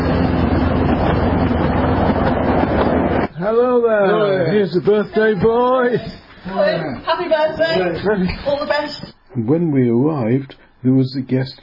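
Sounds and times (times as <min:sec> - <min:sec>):
miniature railway train running around a park in Chester: 0:00.0 - 0:03.3
speech: 0:03.5 - 0:11.6.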